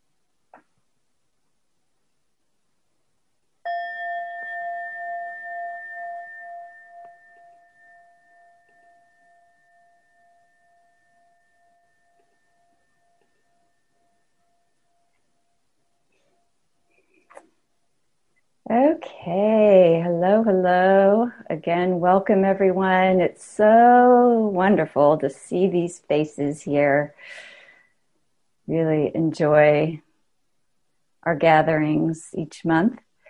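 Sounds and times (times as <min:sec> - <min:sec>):
meditation bell struck: 0:03.6 - 0:17.2
speech: 0:18.7 - 0:27.5, 0:28.7 - 0:30.0, 0:31.2 - 0:33.1.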